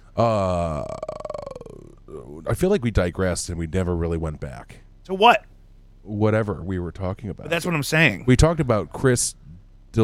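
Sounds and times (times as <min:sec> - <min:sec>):
deep burp into a microphone: 0:00.0 - 0:02.3
speech: 0:00.2 - 0:01.0, 0:02.4 - 0:10.0.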